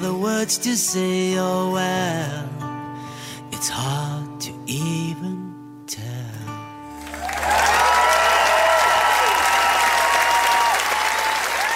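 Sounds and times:
speech: 0:00.2 - 0:02.7, 0:03.6 - 0:06.0
concert crowd cheering: 0:06.9 - 0:11.7
large concert audience clapping: 0:06.9 - 0:11.7.

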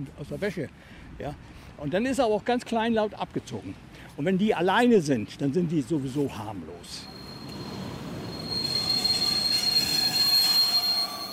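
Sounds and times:
speech: 0:00.0 - 0:07.2
train wheels squealing on rails at the railway station in Stralsund: 0:07.0 - 0:11.3.

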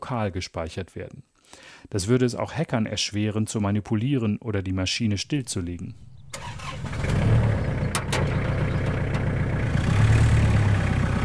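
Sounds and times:
speech: 0:00.1 - 0:07.1
tractor diesel engine on a farm field cranking and starting: 0:05.4 - 0:11.2
metallic clanks: 0:05.9 - 0:09.6.

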